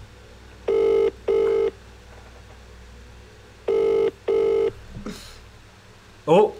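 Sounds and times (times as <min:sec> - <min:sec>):
low steady hum: 0:00.0 - 0:06.5
telephone ringing tone: 0:00.6 - 0:01.8, 0:03.7 - 0:04.8
speech: 0:06.3 - 0:06.5.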